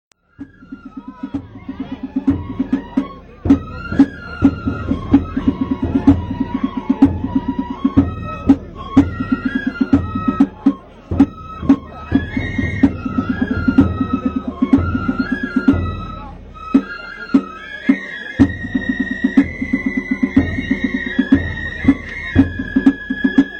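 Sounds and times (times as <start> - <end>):
Kagura festival ensemble music: 0.2 - 23.5.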